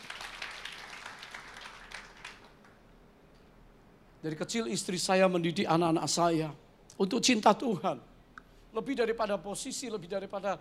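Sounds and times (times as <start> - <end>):
audience applause: 0.0 - 2.8
speech: 4.2 - 8.1, 8.7 - 10.5.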